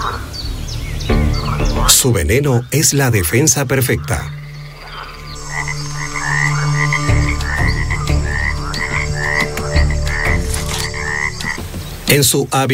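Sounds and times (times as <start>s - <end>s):
chorus of cane toads croaking: 0.0s - 0.3s, 1.1s - 12.1s
speech: 1.9s - 4.4s, 12.1s - 12.7s
steady low drone of night ambience: 4.0s - 11.8s.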